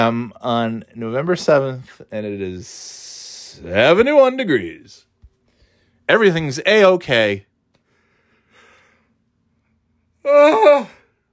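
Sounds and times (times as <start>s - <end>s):
speech: 0.0s - 5.1s, 6.1s - 7.5s, 10.2s - 11.0s
person yawning: 10.2s - 11.1s.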